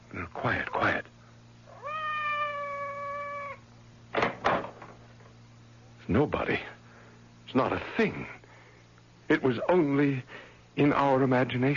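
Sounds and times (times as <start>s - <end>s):
faint low hum: 0.0s - 11.7s
speech: 0.2s - 1.1s, 6.1s - 6.7s, 7.5s - 8.4s, 9.3s - 11.7s
cat meowing outside door: 1.7s - 3.6s.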